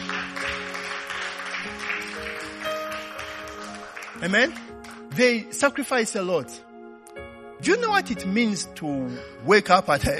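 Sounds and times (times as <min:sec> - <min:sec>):
church audience clapping for the worship team: 0:00.0 - 0:05.5
sustained keyboard or organ chords: 0:00.0 - 0:10.1
speech: 0:04.2 - 0:06.7, 0:07.6 - 0:10.1.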